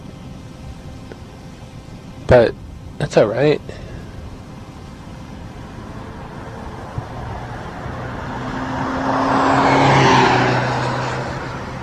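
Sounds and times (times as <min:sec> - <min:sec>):
speech: 0:02.3 - 0:03.8
pickup truck speeding past outdoors: 0:05.6 - 0:11.8.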